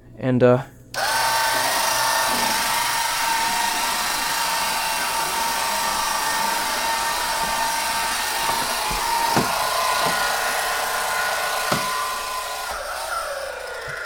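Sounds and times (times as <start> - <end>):
small swivel vacuum cleaner running on carpet: 1.0 - 14.0
faint knocks: 3.4 - 12.7.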